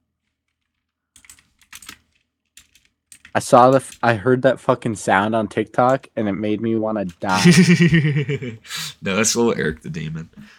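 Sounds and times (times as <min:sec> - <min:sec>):
typing on a computer keyboard: 0:00.2 - 0:04.1
speech: 0:03.4 - 0:10.5
laughter: 0:07.3 - 0:08.9.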